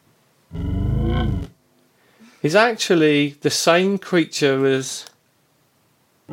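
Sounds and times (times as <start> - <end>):
synthesized lion roar from a vocal tract model: 0.5 - 1.6
speech: 2.4 - 5.1.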